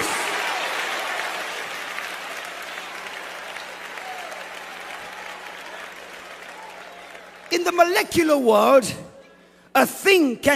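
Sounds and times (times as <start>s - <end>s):
large church audience applauding during a service: 0.0s - 8.0s
speech: 7.5s - 9.1s, 9.8s - 10.5s.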